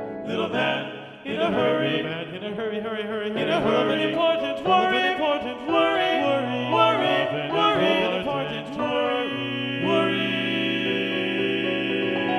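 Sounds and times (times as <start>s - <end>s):
TTBB male choir singing with balanced voices: 0.2s - 12.3s.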